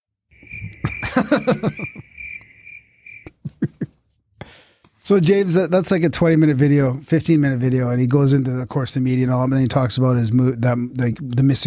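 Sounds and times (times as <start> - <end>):
crickets chirping: 0.3 - 3.4
laughter: 0.6 - 2.5, 3.3 - 4.0
speech: 1.2 - 2.1, 5.1 - 11.6.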